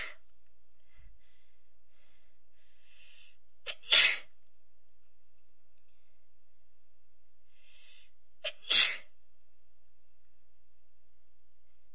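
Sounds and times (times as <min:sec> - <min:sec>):
person sneezing: 0:00.0 - 0:00.2, 0:03.2 - 0:04.3, 0:07.8 - 0:09.1.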